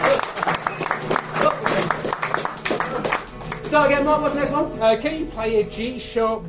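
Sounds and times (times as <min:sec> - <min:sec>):
audience applauding: 0:00.0 - 0:04.2
speech: 0:03.7 - 0:06.4.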